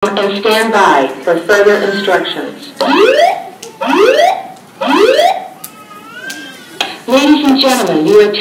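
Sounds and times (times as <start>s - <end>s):
speech: 0.1s - 5.2s, 7.1s - 8.3s
building alarm whooping in rising sweeps: 2.8s - 6.8s.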